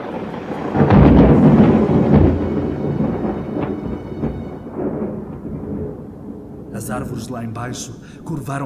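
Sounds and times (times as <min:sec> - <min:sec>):
deep rolling thunder: 0:00.0 - 0:08.1
heavy rain: 0:00.0 - 0:08.2
speech: 0:07.0 - 0:08.6.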